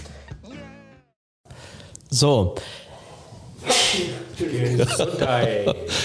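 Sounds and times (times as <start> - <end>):
speech: 2.2 - 2.8, 3.9 - 6.0
person sneezing: 3.6 - 4.3
laughter: 4.1 - 6.0.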